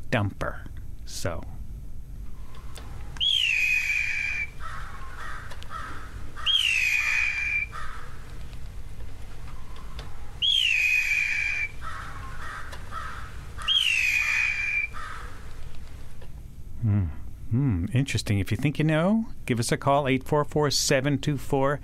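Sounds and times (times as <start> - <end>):
speech: 0.1 - 1.6, 18.0 - 21.8
Blue jay imitating a red-tailed hawk with loud hoarse screams: 3.2 - 8.2, 9.7 - 15.5.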